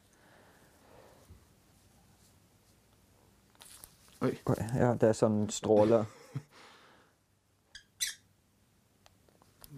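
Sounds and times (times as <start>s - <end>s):
rustling: 0.0s - 5.2s
speech: 4.2s - 6.2s
pet bird chirping: 7.7s - 8.3s.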